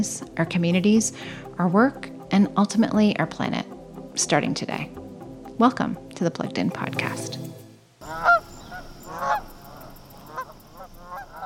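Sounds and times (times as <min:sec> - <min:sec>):
speech: 0:00.0 - 0:05.0, 0:05.6 - 0:07.4
outdoor hiss: 0:07.3 - 0:11.4
geese honking overhead during fall migration: 0:08.0 - 0:11.4.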